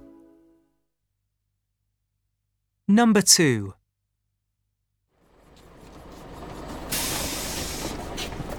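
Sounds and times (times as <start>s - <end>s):
speech: 2.9s - 3.8s
bus engine idling at Museum Street: 5.2s - 8.5s
bus air brake hiss: 6.9s - 8.5s.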